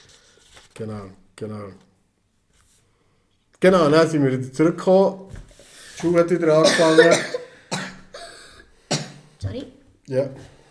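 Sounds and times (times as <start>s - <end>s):
speech: 0.8s - 1.9s, 3.6s - 5.4s, 6.0s - 7.3s, 9.5s - 10.6s
person coughing harshly: 6.5s - 9.3s.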